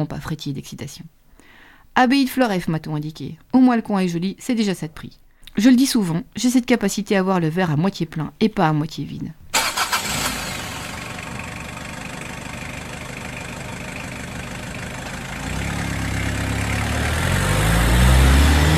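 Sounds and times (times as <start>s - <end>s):
speech: 0.0s - 1.2s, 2.0s - 9.4s
car engine cranking, starting and idling: 9.5s - 18.7s.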